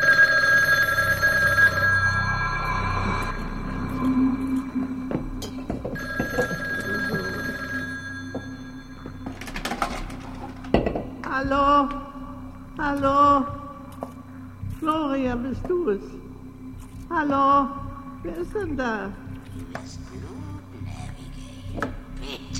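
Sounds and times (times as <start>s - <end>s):
telephone bell ringing: 0.0s - 4.9s, 5.7s - 10.4s
speech: 11.5s - 12.0s, 12.9s - 13.6s, 15.0s - 16.2s, 17.1s - 20.4s.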